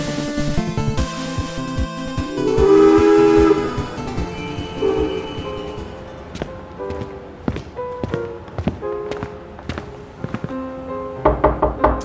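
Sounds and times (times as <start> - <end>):
steady tonal hum: 0.1 - 6.2
sharp knocks on a door: 11.2 - 12.0.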